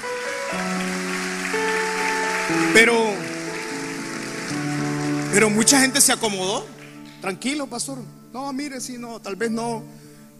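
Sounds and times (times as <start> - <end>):
church audience applauding: 0.0 - 7.7
sustained organ or keyboard chords: 0.0 - 10.3
speech: 2.5 - 3.2, 5.4 - 10.3.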